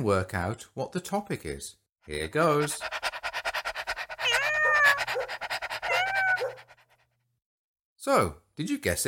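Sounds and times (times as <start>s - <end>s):
speech: 0.0s - 3.0s, 8.0s - 9.0s
dog panting rapidly: 2.1s - 7.3s
cat meowing: 4.2s - 5.3s, 5.9s - 6.6s.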